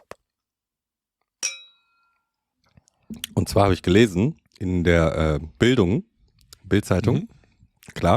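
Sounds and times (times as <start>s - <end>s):
glasses clinking in a toast: 1.4s - 2.2s
speech: 3.4s - 6.1s, 6.7s - 8.1s.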